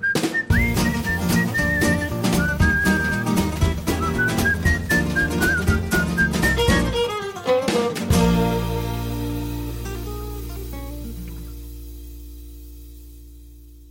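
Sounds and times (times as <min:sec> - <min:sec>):
bright whistled melody: 0:00.0 - 0:07.0
full band playing with steady percussion: 0:00.2 - 0:11.5.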